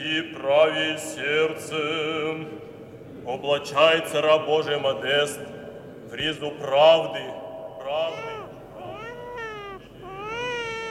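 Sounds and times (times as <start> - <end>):
speech: 0.0 - 8.3
infant crying at a christening: 7.8 - 10.8.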